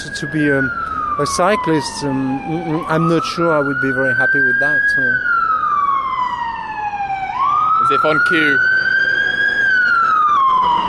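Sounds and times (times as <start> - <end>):
ambulance siren wailing while passing by: 0.0 - 10.8
steady traffic noise: 0.0 - 10.8
speech: 0.1 - 5.3, 7.9 - 8.7.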